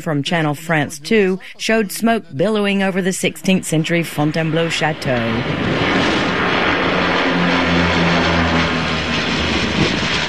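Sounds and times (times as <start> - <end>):
speech: 0.0 - 6.1
Canadair firefighting propeller plane flying overhead near Fontainebleau France: 3.2 - 10.2.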